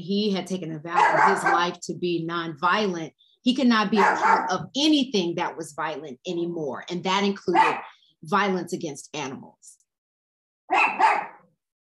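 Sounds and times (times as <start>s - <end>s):
speech: 0.0s - 9.8s
dog barking: 0.9s - 1.7s, 4.0s - 4.5s, 7.5s - 8.0s, 10.7s - 11.5s.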